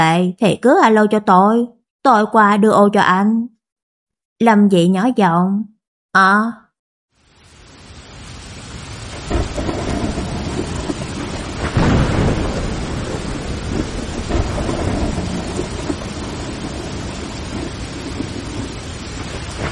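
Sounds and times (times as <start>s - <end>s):
speech: 0.0s - 3.5s, 4.4s - 6.6s
heavy outdoor rain after a sudden downpour near a school: 7.2s - 19.7s
thunder rumbling: 7.3s - 19.7s.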